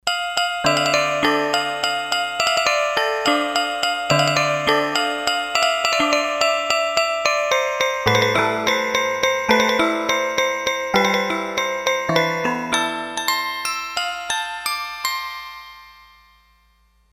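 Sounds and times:
Roland D-10 synthesizer hammer bells: 0.1s - 17.1s.

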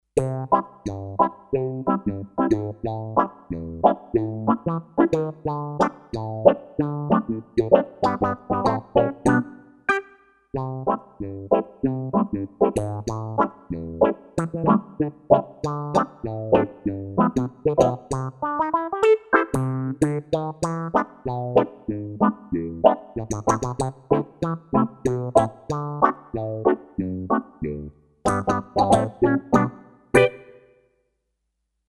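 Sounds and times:
quack sound on a Kawai K5000S synthesizer: 0.2s - 19.9s, 20.6s - 30.7s.

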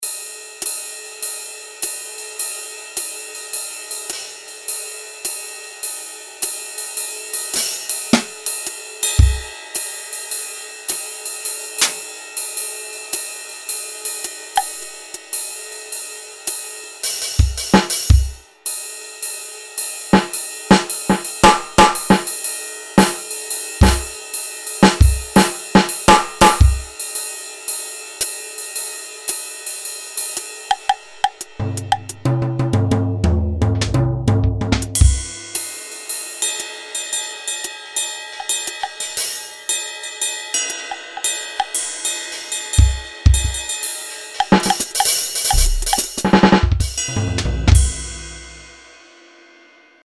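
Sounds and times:
jazz drums from E-mu Pro-Cussion factory ROM kits: 7.4s - 9.6s, 11.7s - 12.6s, 14.2s - 15.4s, 17.1s - 18.4s, 20.1s - 27.1s, 30.2s - 35.7s, 42.8s - 43.8s, 44.4s - 48.8s.

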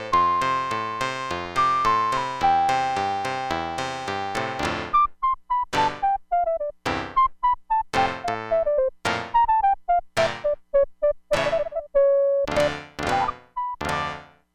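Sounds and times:
clavichord: 0.1s - 11.8s, 12.5s - 14.3s.

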